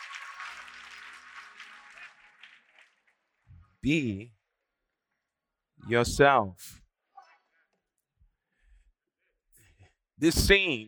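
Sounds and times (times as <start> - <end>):
audience applauding in praise: 0.0 - 3.5
speech: 3.8 - 4.4, 5.8 - 6.8, 10.2 - 10.8.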